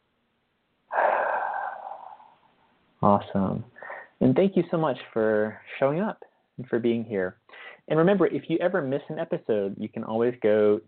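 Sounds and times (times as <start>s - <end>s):
long slow breath during a guided relaxation exercise: 0.9s - 2.8s, 3.8s - 4.2s, 7.5s - 7.9s
speech: 3.0s - 10.8s.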